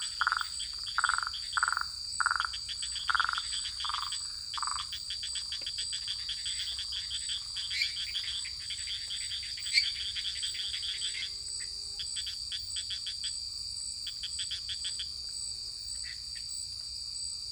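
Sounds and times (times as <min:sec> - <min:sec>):
lesser treefrog and unidentified tree frog calling in French Guiana: 0:00.0 - 0:11.3
steady high insect drone: 0:00.0 - 0:17.3.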